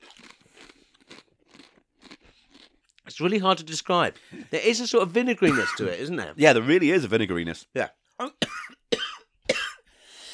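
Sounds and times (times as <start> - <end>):
biting and crunching a salt and vinegar tortilla chip: 0.0 - 2.9
speech: 3.2 - 8.4.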